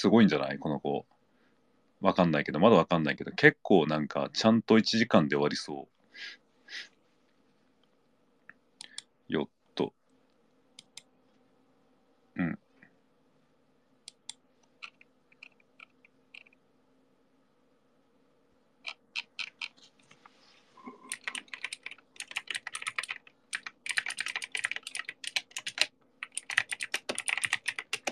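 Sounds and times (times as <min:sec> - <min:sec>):
speech: 0:00.0 - 0:01.2, 0:02.0 - 0:06.9, 0:09.3 - 0:10.0, 0:12.4 - 0:12.6
low hum: 0:00.0 - 0:28.1
rapid typing on a computer keyboard: 0:14.8 - 0:16.6, 0:18.8 - 0:19.7, 0:21.1 - 0:28.1.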